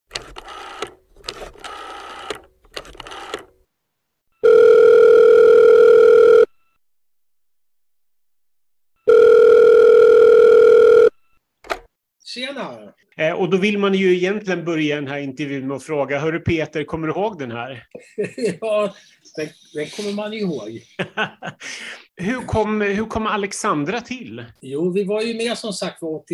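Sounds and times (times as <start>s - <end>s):
short phone dialing beeps: 4.4s - 6.5s, 9.1s - 11.2s
long steady phone ringback tones: 4.4s - 6.8s, 9.0s - 11.4s
speech: 12.6s - 26.3s
laughter: 17.9s - 22.6s.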